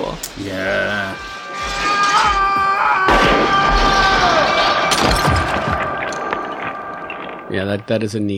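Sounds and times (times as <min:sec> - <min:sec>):
speech: 0:00.4 - 0:01.8, 0:07.6 - 0:08.3
sharp gunshot bangs: 0:03.0 - 0:08.0
mirror glass shattering from being shot: 0:03.2 - 0:07.6.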